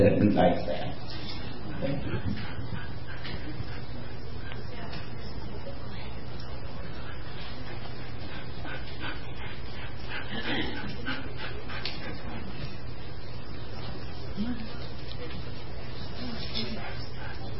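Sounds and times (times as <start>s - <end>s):
speech: 0.0s - 0.9s, 1.8s - 2.7s
low hum: 0.0s - 17.5s
wheaten terrier and standard poodle mix puppy panting: 1.0s - 4.6s, 6.8s - 12.9s, 13.6s - 17.5s.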